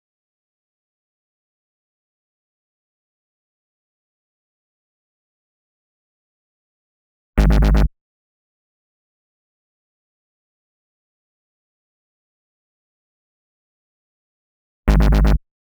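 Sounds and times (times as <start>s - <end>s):
122 B#m bass: 7.4s - 7.9s, 14.9s - 15.4s.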